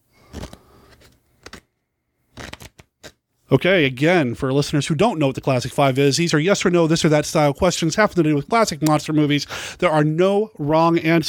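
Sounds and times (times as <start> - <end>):
deck of question cards for a game being shuffled: 0.2 - 1.7, 2.3 - 3.2
speech: 3.5 - 11.2.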